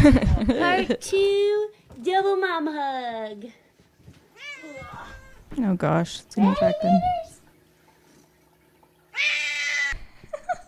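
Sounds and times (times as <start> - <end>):
speech: 0.0 - 3.6, 4.6 - 7.3, 9.2 - 9.5
cat drawn-out strained meow: 4.4 - 5.5, 9.1 - 10.0.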